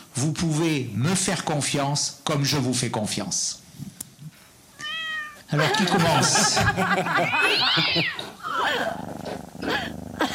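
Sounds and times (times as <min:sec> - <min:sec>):
noise: 0:00.0 - 0:10.3
speech: 0:00.2 - 0:03.9, 0:05.5 - 0:09.0
cats meowing: 0:04.7 - 0:05.5, 0:07.2 - 0:08.6
laughter: 0:05.5 - 0:09.0.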